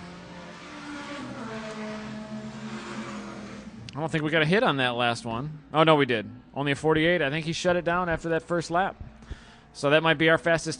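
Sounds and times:
race car engine passing at a time attack session at Road Atlanta: 0:00.0 - 0:10.7
speech: 0:04.0 - 0:10.7.

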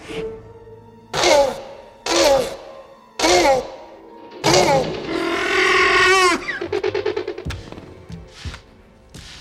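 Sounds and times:
velociraptor-style creature call made from tortoise mating sounds: 0:01.1 - 0:03.8, 0:04.4 - 0:06.7.

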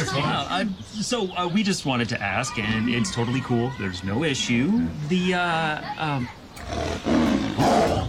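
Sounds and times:
speech: 0:00.1 - 0:08.0
tiger breathy growling bursts: 0:06.6 - 0:08.0
tiger roaring: 0:06.6 - 0:08.0.

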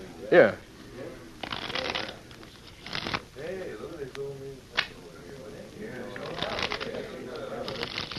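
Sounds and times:
soft hum: 0:00.0 - 0:08.1
speech: 0:00.3 - 0:00.6
playing cards riffle shuffling before a card game: 0:01.4 - 0:03.3, 0:06.2 - 0:07.0, 0:07.6 - 0:08.1.

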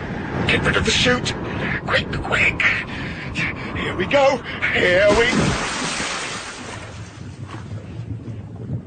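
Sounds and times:
speech: 0:00.5 - 0:05.8
churning bubbling lake water: 0:05.0 - 0:08.8
person plunging down into a lake: 0:05.1 - 0:07.7.

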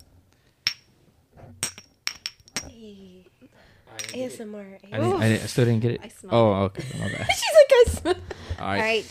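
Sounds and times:
shot glasses clinking in a toast for Dia de los Muertos: 0:00.6 - 0:00.9, 0:01.6 - 0:02.7, 0:04.0 - 0:04.3
speech: 0:02.7 - 0:09.0
laughter: 0:06.8 - 0:08.7.

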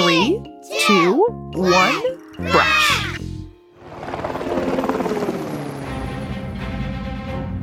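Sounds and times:
speech: 0:00.9 - 0:02.7
airplane engine roaring before takeoff: 0:03.8 - 0:07.6.

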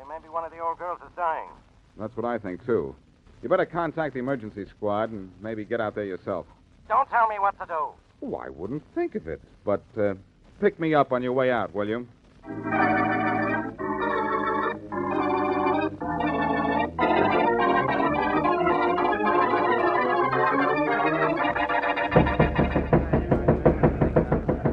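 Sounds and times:
speech: 0:00.2 - 0:13.1
dramatic orchestral music: 0:12.5 - 0:24.5
loud knocks on a door: 0:22.1 - 0:24.7.

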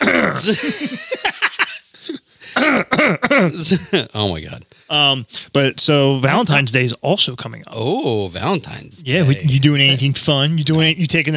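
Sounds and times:
loud drawn-out throat clearing with gravelly rasps: 0:00.0 - 0:00.6, 0:02.5 - 0:04.1
laughter: 0:00.0 - 0:02.3, 0:03.4 - 0:04.3
speech: 0:00.4 - 0:02.2, 0:03.0 - 0:11.3.

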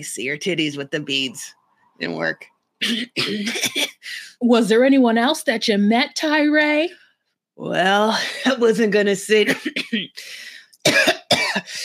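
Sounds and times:
speech: 0:00.0 - 0:03.8, 0:04.4 - 0:07.0, 0:07.6 - 0:11.8
person clearing throat: 0:02.8 - 0:04.0, 0:10.9 - 0:11.7
person coughing from something caught in the throat: 0:02.8 - 0:04.0, 0:09.4 - 0:10.1, 0:10.8 - 0:11.8.

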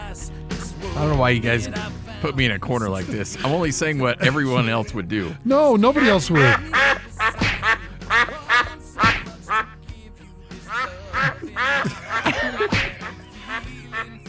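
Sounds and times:
speech: 0:01.0 - 0:06.9
laughter: 0:02.7 - 0:08.8, 0:10.7 - 0:14.2
goose honking while chasing someone: 0:05.8 - 0:09.8, 0:10.7 - 0:14.2.

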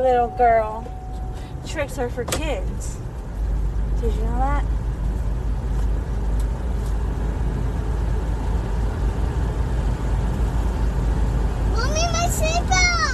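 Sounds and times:
speech: 0:00.0 - 0:00.9, 0:01.6 - 0:03.0, 0:04.0 - 0:04.8, 0:11.8 - 0:13.0
car engine rumbling as the car is driven slowly to reposition it: 0:00.0 - 0:13.1
road noise: 0:00.0 - 0:13.1.

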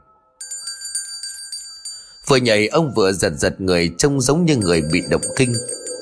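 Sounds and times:
small hand bell ringing: 0:00.4 - 0:02.4, 0:04.6 - 0:06.0
speech: 0:02.2 - 0:05.9.

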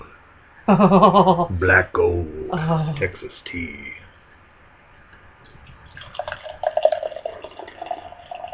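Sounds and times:
speech: 0:00.7 - 0:04.1
pitch-black beer pouring from a 32-ounce crowler can into a cup: 0:05.9 - 0:08.5.

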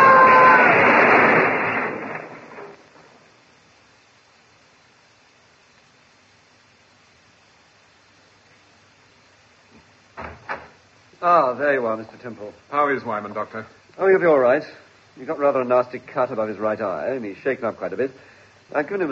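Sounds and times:
loud car crash: 0:00.0 - 0:03.2
speech: 0:11.2 - 0:19.1.

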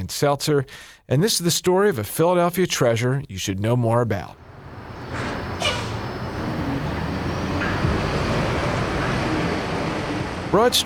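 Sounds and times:
speech: 0:00.1 - 0:04.4, 0:10.5 - 0:10.8
brake squeal or hiss: 0:04.4 - 0:10.8
passing cars and buses on Broad Street in Philadelphia: 0:04.4 - 0:10.8.

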